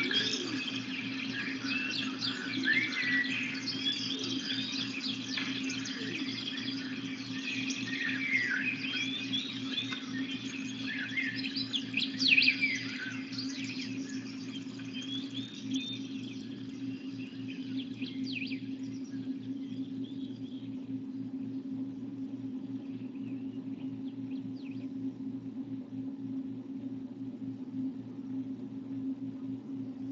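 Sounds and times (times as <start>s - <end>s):
many birds chirping and singing outdoors: 0.0s - 21.6s
steady low hum: 0.0s - 30.1s.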